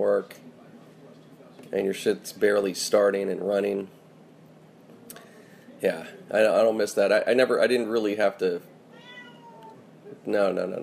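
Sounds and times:
speech: 0.0s - 0.5s, 1.7s - 4.0s, 5.8s - 8.7s, 10.2s - 10.8s
domestic cat meowing: 8.9s - 9.8s.

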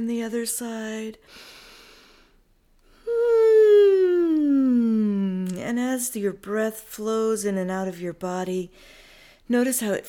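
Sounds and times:
speech: 0.0s - 1.6s, 5.6s - 10.0s
long voiced yawn while stretching: 2.9s - 5.4s.

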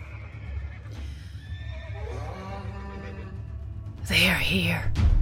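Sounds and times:
horses screaming and whinnying: 0.0s - 3.7s
speech: 4.1s - 5.1s.

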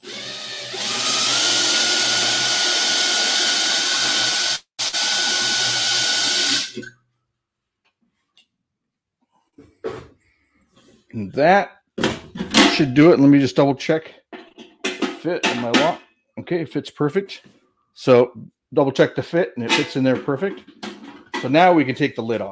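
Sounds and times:
power drill drilling a hole: 0.0s - 6.9s
speech: 11.2s - 11.8s, 12.8s - 14.2s, 15.2s - 20.8s, 21.4s - 22.5s.

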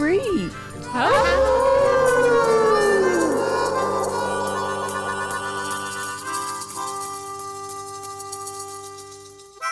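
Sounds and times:
several people howling in imitation of dogs: 0.9s - 6.5s.

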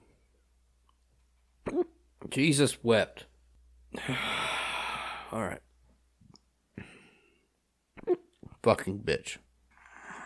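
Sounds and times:
hiccup: 1.6s - 2.0s, 8.0s - 8.4s
speech: 1.7s - 3.3s, 3.9s - 4.4s, 5.3s - 5.7s, 8.1s - 9.4s.

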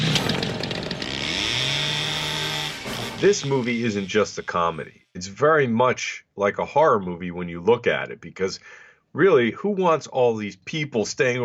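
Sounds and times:
chainsaw engine revving and idling: 0.0s - 4.2s
speech: 3.2s - 11.4s.

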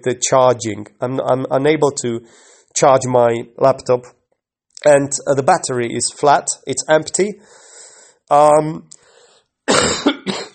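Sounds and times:
speech: 0.0s - 4.2s, 4.8s - 7.6s, 8.3s - 9.0s, 9.7s - 10.0s
sick person coughing: 9.7s - 10.5s.

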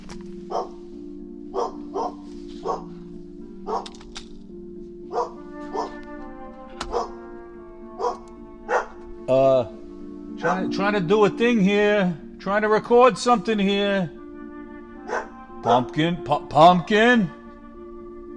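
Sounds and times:
dog barking: 0.5s - 0.8s, 1.5s - 4.0s, 5.1s - 6.0s, 6.9s - 7.2s, 8.0s - 9.0s, 10.4s - 10.7s, 15.0s - 15.9s
dog giving a high-pitched yelp: 0.5s - 0.8s, 1.6s - 2.9s, 3.7s - 3.9s, 5.1s - 6.0s, 6.9s - 7.2s, 8.0s - 9.0s, 15.1s - 15.9s
speech: 10.7s - 14.2s, 15.6s - 17.4s.

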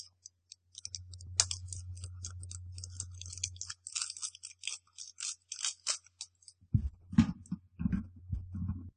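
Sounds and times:
scissors cutting open plastic candy packaging: 0.0s - 6.6s
heavier thumps: 6.7s - 8.9s.

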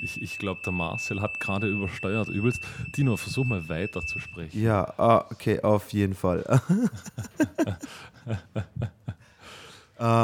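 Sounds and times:
smoke alarm steady piercing high-pitched tone: 0.0s - 4.9s
speech: 0.1s - 9.0s, 10.0s - 10.2s
laughter: 6.4s - 9.3s.

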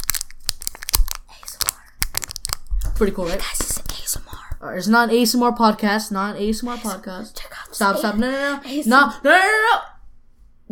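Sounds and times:
crunching and crinkling of dog-chewed cardboard solar eclipse glasses: 0.0s - 2.7s
speech: 3.0s - 3.8s, 4.6s - 9.9s.

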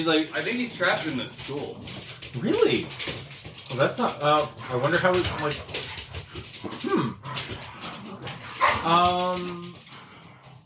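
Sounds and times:
speech: 0.0s - 5.8s, 8.9s - 9.7s
dogs whimpering and yipping: 5.9s - 9.1s
drawn-out high dog whine: 6.6s - 9.0s.

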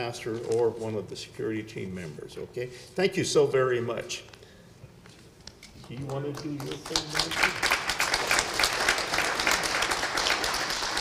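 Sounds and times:
speech: 0.0s - 4.4s, 5.9s - 7.7s
crowd at a church service clapping: 5.8s - 11.0s.

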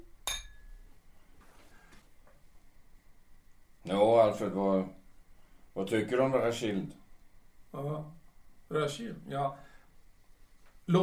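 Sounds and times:
glasses clinking in a toast: 0.2s - 0.8s
speech: 3.9s - 5.0s, 5.8s - 7.0s, 7.7s - 9.6s.

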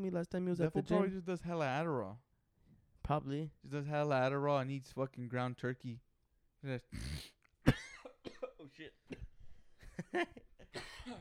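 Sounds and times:
man talking loudly and excitedly: 0.0s - 1.6s
speech: 0.0s - 2.3s, 3.0s - 7.9s, 8.7s - 9.3s, 10.1s - 11.1s
sharp harsh coughs: 7.0s - 9.4s, 10.6s - 11.1s.

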